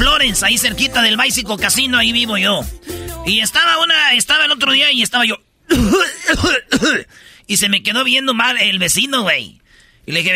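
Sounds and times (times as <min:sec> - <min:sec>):
speech: 0:00.2 - 0:10.3
coughing and throat clearing: 0:05.7 - 0:07.1.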